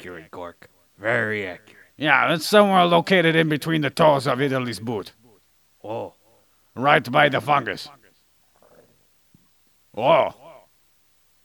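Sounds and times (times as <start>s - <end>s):
speech: 0.0s - 5.2s, 5.8s - 6.2s, 6.8s - 8.0s, 10.0s - 10.4s
small quiet belch: 8.6s - 9.1s.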